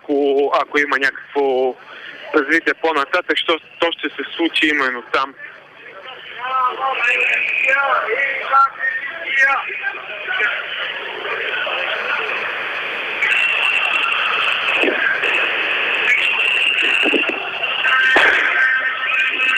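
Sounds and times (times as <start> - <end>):
steady wash of crowd noise at a street protest: 0.0 - 19.5
speech: 0.1 - 5.6, 6.4 - 10.7
single sharp firecracker bang at a street protest: 18.1 - 18.8.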